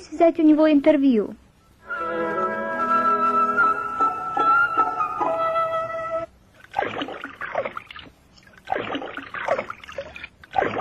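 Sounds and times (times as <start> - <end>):
speech: 0.1 - 1.4
steady musical tones: 1.7 - 6.3
water splashing and sloshing from raccoon rinsing food in a stream: 6.5 - 10.7.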